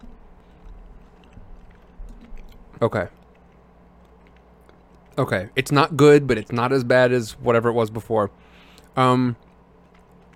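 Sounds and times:
person chewing a jelly bean: 0:00.0 - 0:05.2, 0:08.6 - 0:10.3
speech: 0:02.8 - 0:03.2, 0:05.2 - 0:09.4.

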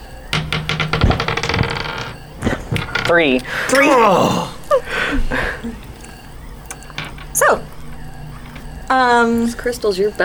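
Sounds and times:
dice rolling on a hard tabletop: 0:00.3 - 0:04.2, 0:05.7 - 0:07.6, 0:08.3 - 0:08.8
speech: 0:03.1 - 0:05.8, 0:08.9 - 0:10.2.

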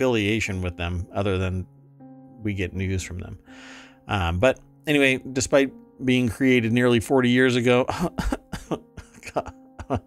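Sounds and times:
speech: 0:00.0 - 0:01.8, 0:02.4 - 0:10.0
person coughing: 0:08.2 - 0:10.0.

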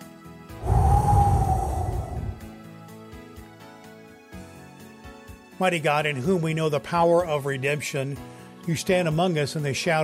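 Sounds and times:
deep breath taken before a prayer: 0:00.6 - 0:02.6
speech: 0:05.6 - 0:10.0.

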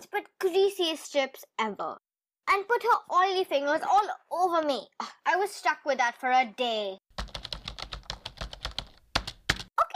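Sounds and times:
speech: 0:00.2 - 0:07.0, 0:09.8 - 0:09.9
hard typing on a computer keyboard: 0:07.2 - 0:09.7.

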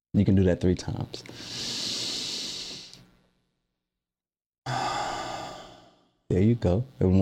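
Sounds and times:
speech: 0:00.1 - 0:01.7, 0:06.3 - 0:07.2
deep breathing during a standing exercise: 0:01.3 - 0:03.0, 0:04.7 - 0:06.3.

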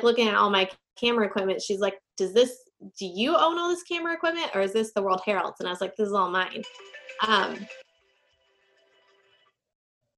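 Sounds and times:
speech: 0:00.0 - 0:07.8
mobile phone ringing with bright electronic ringtone: 0:06.6 - 0:09.3.

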